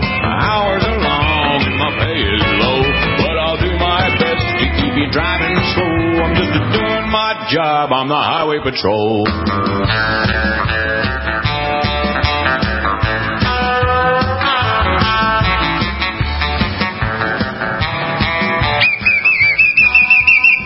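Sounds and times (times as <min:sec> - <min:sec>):
upbeat instrumental music: 0:00.0 - 0:20.6
speech: 0:07.5 - 0:10.8
shrill warbling whistle blast: 0:18.8 - 0:20.6.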